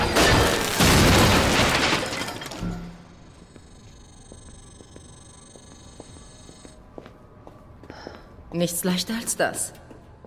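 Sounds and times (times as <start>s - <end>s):
overloaded ventilation fan in an air duct exploding in a video game: 0.1s - 2.9s
speech: 8.6s - 9.8s.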